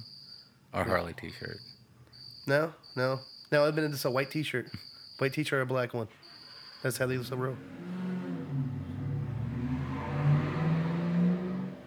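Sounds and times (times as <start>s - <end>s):
speech: 0.7s - 1.8s, 2.4s - 6.2s, 6.8s - 8.0s
Ramcharger SUV engine revving as it drives off: 7.1s - 11.8s.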